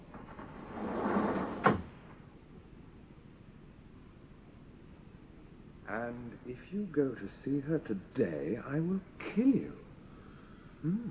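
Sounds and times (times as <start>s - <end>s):
automatic door sliding open with a mechanical whoosh: 0.1s - 2.2s
speech: 5.9s - 9.8s, 10.8s - 11.1s.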